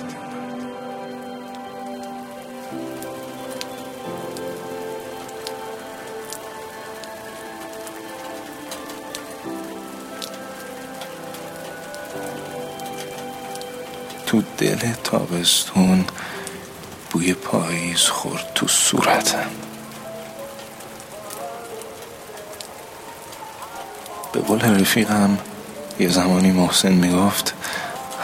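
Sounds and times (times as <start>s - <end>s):
soft low musical drone: 0.0s - 26.8s
rain pattering on a hard surface: 0.0s - 28.2s
speech: 14.3s - 16.4s, 17.3s - 19.7s, 24.4s - 27.8s.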